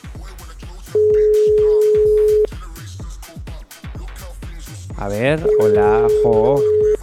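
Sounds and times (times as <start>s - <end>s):
quiet rhythmic background: 1.0s - 2.5s, 5.0s - 7.0s
telephone call ringing tone: 1.0s - 2.5s, 5.4s - 7.0s
speech: 5.0s - 6.8s.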